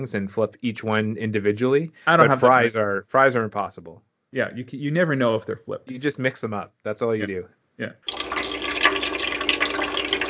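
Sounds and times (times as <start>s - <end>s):
speech: 0.0s - 8.2s
water dripping through a filter into a jug: 8.0s - 10.2s.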